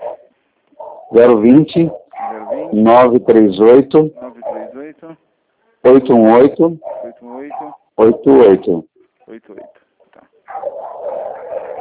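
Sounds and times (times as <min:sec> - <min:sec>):
pack of dogs barking and yapping: 0:00.0 - 0:04.9, 0:06.2 - 0:08.6, 0:10.4 - 0:11.7
speech: 0:01.1 - 0:02.0, 0:02.7 - 0:04.3, 0:05.8 - 0:06.9, 0:08.0 - 0:09.7.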